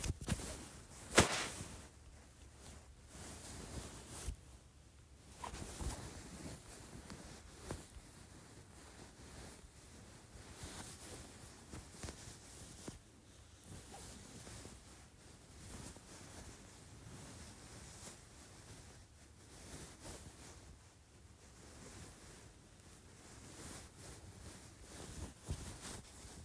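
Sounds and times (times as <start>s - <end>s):
blanket being rubbed and kneaded: 0.0s - 26.4s
sharp snap: 1.1s - 1.6s.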